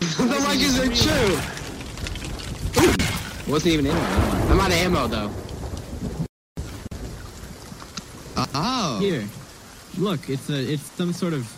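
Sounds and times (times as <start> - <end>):
rain of a thunderstorm: 0.0 - 11.5
thunder rumbling in a thunderstorm: 0.3 - 10.7
thunder crack: 0.4 - 9.3
speech: 3.5 - 6.1, 8.6 - 9.4, 10.0 - 11.5.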